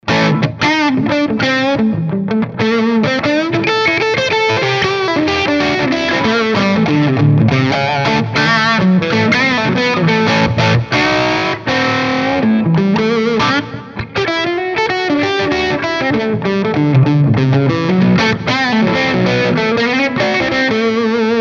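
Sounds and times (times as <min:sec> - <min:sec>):
electric guitar: 0:00.0 - 0:21.3.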